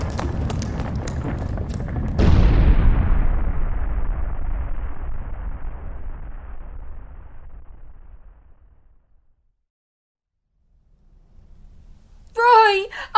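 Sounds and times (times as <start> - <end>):
explosion: 0.0 - 9.6.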